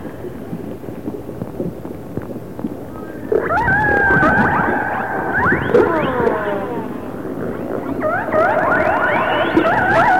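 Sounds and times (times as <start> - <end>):
resident orcas calling underwater: 3.2 - 10.1.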